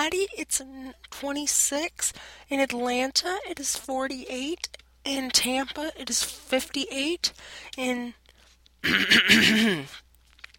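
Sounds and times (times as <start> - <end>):
speech: 0.0 - 8.2, 8.8 - 10.0
person clearing throat: 8.8 - 10.0.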